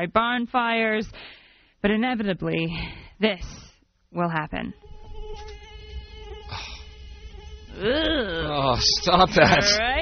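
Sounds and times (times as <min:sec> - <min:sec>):
speech: 0:00.0 - 0:05.6, 0:07.8 - 0:10.0
mosquito whine: 0:04.7 - 0:10.0.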